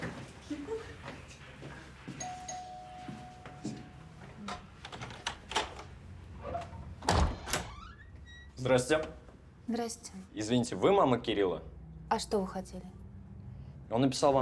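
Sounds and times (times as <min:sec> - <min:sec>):
electronic doorbell ringing at an apartment door off a stairwell: 0:02.2 - 0:04.1
apartment door opening with clicks and knocks: 0:04.4 - 0:05.9, 0:06.5 - 0:08.4
speech: 0:08.6 - 0:13.0, 0:13.9 - 0:14.4.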